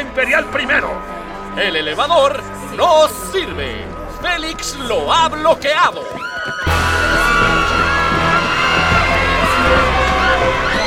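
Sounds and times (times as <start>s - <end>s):
speech: 0.0s - 7.6s
people running in frantic commotion: 5.5s - 10.8s
panicked crowd shouting and screaming: 5.9s - 10.8s.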